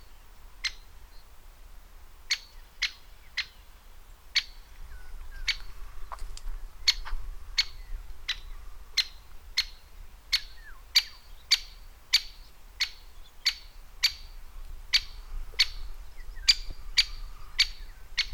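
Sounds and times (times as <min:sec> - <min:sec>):
great spotted woodpecker calling with short sharp kik notes: 0:00.6 - 0:00.9, 0:02.3 - 0:03.7, 0:04.3 - 0:05.7, 0:06.8 - 0:18.3.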